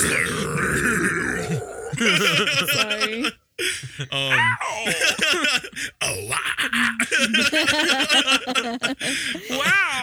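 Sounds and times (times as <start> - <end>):
long loud guttural burp: 0.0 - 2.2
laughter: 1.9 - 10.0
speech: 2.0 - 3.4, 4.0 - 6.0.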